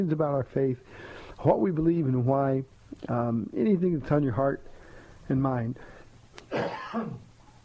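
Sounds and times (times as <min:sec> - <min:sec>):
speech: 0:00.0 - 0:05.9, 0:06.5 - 0:07.3
person coughing with a throaty rasp: 0:06.5 - 0:07.3.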